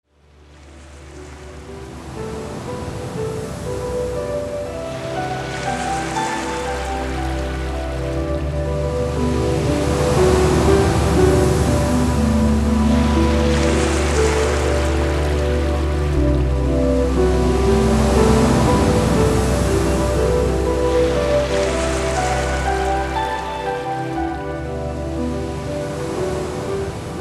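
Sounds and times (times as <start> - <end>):
ocean surf: 0.3 - 27.1.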